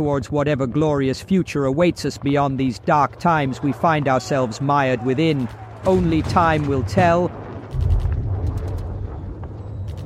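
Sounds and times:
speech: 0:00.0 - 0:07.9
approaching gunfire: 0:05.4 - 0:10.0
heavy continuous low rumble: 0:06.0 - 0:10.0.

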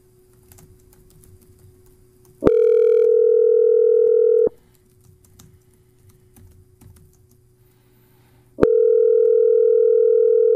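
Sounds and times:
ringback tone of an outgoing telephone call: 0:02.5 - 0:04.5, 0:08.6 - 0:10.5.

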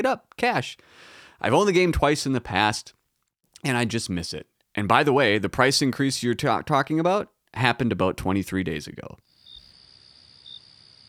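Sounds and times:
speech: 0:00.0 - 0:03.0, 0:03.6 - 0:09.3
crickets chirping: 0:09.3 - 0:11.0.

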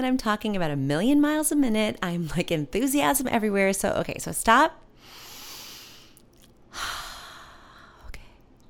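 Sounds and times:
speech: 0:00.0 - 0:05.2, 0:06.7 - 0:07.0
person breathing deeply: 0:05.0 - 0:08.1.

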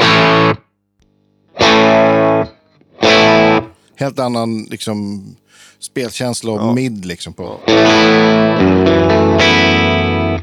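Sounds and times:
distorted electric guitar chords through a Marshall amp: 0:01.5 - 0:03.7, 0:07.6 - 0:10.4
speech: 0:04.0 - 0:09.9.

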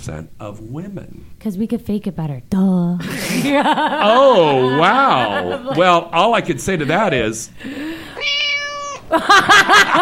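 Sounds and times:
speech: 0:00.0 - 0:08.4, 0:09.1 - 0:09.9
laughter: 0:03.0 - 0:07.4, 0:09.1 - 0:09.9
human voice imitating a cat meowing: 0:08.2 - 0:09.1.

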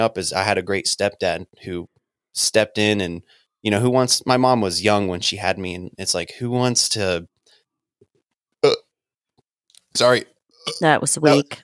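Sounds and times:
speech: 0:00.0 - 0:07.3, 0:10.0 - 0:11.6
short wet burp: 0:08.6 - 0:09.0, 0:10.5 - 0:11.0.

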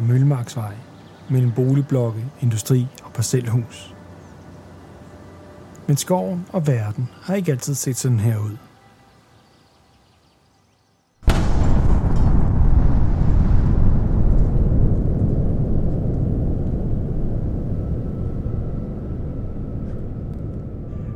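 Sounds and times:
speech: 0:00.1 - 0:04.0, 0:05.9 - 0:08.7
massive explosion: 0:11.2 - 0:21.1
deep roaring explosion rumble: 0:11.3 - 0:21.1.

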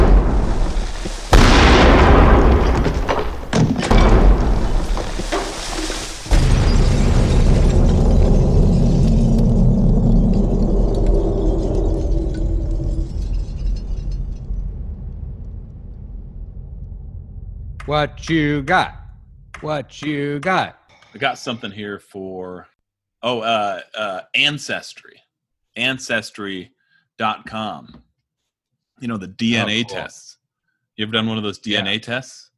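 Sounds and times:
heavy rumble after explosions: 0:00.0 - 0:19.6
sound-effect explosions: 0:00.0 - 0:19.6
speech: 0:17.9 - 0:19.0, 0:19.6 - 0:25.2, 0:25.8 - 0:28.0, 0:29.0 - 0:30.3, 0:31.0 - 0:32.4.

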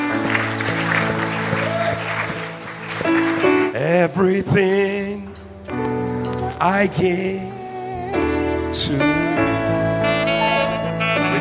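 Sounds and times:
congregation clapping continuously in a dense steady patter: 0:00.0 - 0:04.2
sustained keyboard or organ chords: 0:00.0 - 0:11.3
speech: 0:04.0 - 0:05.0, 0:06.6 - 0:07.5, 0:08.7 - 0:09.5.

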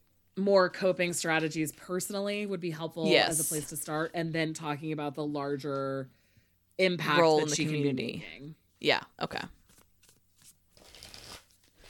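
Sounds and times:
speech: 0:00.4 - 0:06.2, 0:06.8 - 0:09.6
tarot cards being shuffled: 0:09.5 - 0:11.8.

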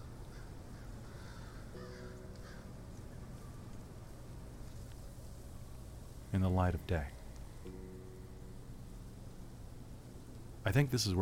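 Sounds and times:
wintering crow cawing perched on the side of a black cabin: 0:00.0 - 0:02.9
steady wind-like noise: 0:00.0 - 0:11.2
speech: 0:06.4 - 0:07.8, 0:10.6 - 0:11.2.

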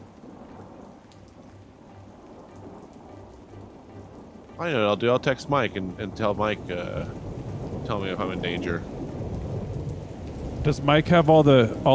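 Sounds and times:
low rolling rumble: 0:00.0 - 0:11.9
steady dense rain pouring down: 0:00.0 - 0:11.9
speech: 0:04.6 - 0:07.2, 0:07.8 - 0:08.9, 0:10.6 - 0:11.9.

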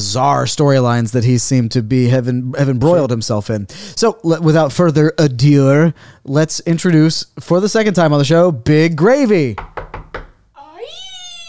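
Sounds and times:
speech: 0:00.0 - 0:09.8
dull knocks: 0:09.6 - 0:10.4.

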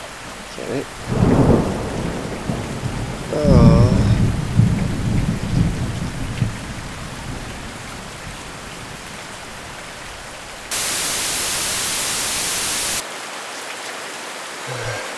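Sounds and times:
speech: 0:00.6 - 0:01.2
heavy rain: 0:01.1 - 0:05.2, 0:10.7 - 0:13.0
low rumble of thunder: 0:01.1 - 0:06.7
harsh static-like noise: 0:10.7 - 0:13.0.

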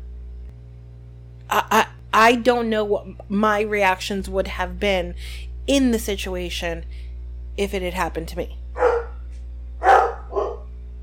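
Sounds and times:
steady low hum: 0:00.0 - 0:11.0
speech: 0:01.5 - 0:07.0, 0:07.6 - 0:08.6
dog barking: 0:08.8 - 0:09.2, 0:09.8 - 0:10.7.

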